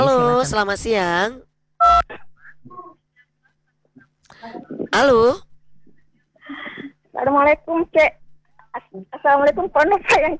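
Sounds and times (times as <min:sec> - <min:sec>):
speech: 0:00.4 - 0:03.0, 0:04.4 - 0:05.5, 0:06.5 - 0:08.2, 0:08.8 - 0:10.3
telephone tones as a call is connected to a call-in line: 0:01.8 - 0:02.1.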